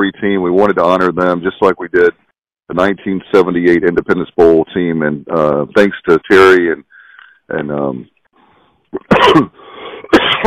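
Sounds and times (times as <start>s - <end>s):
speech: 0.0s - 6.9s, 7.5s - 8.1s, 8.9s - 10.4s
harsh loud coughs: 9.0s - 10.4s
person clearing throat: 9.0s - 10.4s.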